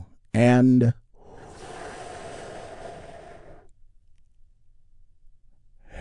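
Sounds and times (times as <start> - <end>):
deep breath in during a guided meditation: 1.2 - 3.7.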